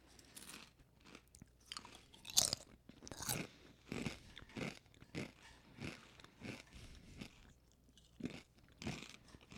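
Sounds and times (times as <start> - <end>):
crunching and chewing thin twisty sweet potato chips: 0.1 - 9.5.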